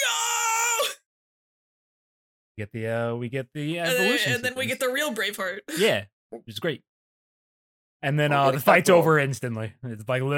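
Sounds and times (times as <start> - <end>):
cartoon creature screaming in terror: 0.0 - 1.0
speech: 2.6 - 6.9, 8.0 - 10.3.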